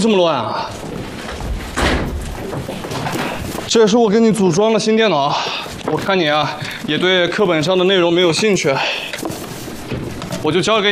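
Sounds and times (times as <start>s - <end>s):
speech: 0.0s - 0.9s, 3.1s - 9.2s, 10.4s - 10.9s
steady rustling hiss: 0.0s - 10.9s
door swinging and shutting: 0.8s - 3.7s.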